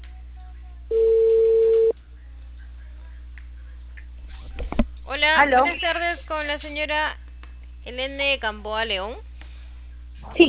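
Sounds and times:
telephone ringback tone on an outgoing call: 0.9 - 1.9
speech: 5.3 - 7.2, 7.8 - 9.3, 10.2 - 10.4.

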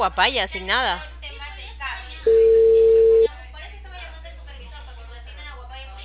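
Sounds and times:
speech: 0.0 - 1.1
telephone call tone while dialling on a narrow phone line: 2.3 - 3.3.

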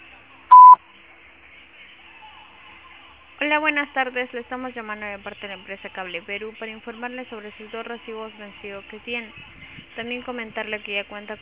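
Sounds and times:
mobile carrier voicemail electronic beep tone: 0.5 - 0.8
speech: 3.5 - 11.3.

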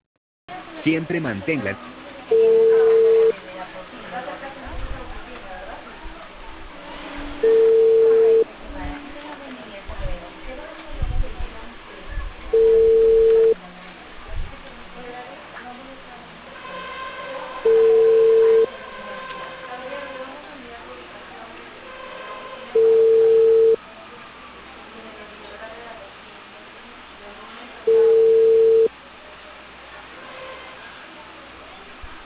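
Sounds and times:
voices: 0.5 - 32.2
speech: 0.8 - 2.9
telephone line ringing tones as a call transfers to voicemail: 2.3 - 3.4, 7.4 - 8.5, 12.5 - 13.6, 17.6 - 18.7, 22.7 - 23.8, 27.9 - 28.9.

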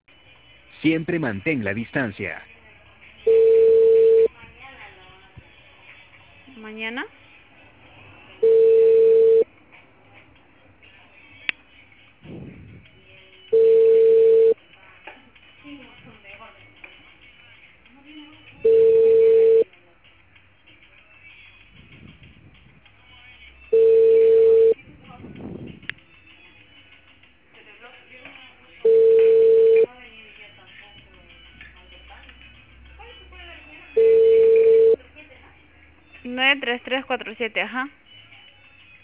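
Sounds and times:
speech: 0.8 - 2.5, 6.6 - 7.2, 36.9 - 38.1
ringing tone of a dialed unanswered telephone call: 3.2 - 4.3, 8.4 - 9.5, 13.5 - 14.6, 18.6 - 19.7, 23.7 - 24.8, 28.8 - 29.9, 34.0 - 35.0.

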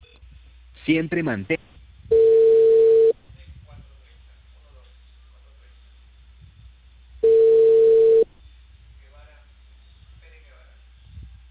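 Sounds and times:
faint hiss: 0.0 - 11.4
speech: 0.9 - 1.8
low telephone line beeps after a call is cut off: 2.1 - 3.2, 7.2 - 8.3.

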